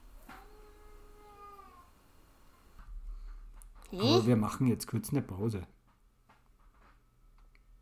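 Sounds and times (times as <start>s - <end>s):
baby crying: 0.3s - 2.0s
speech: 3.9s - 5.8s.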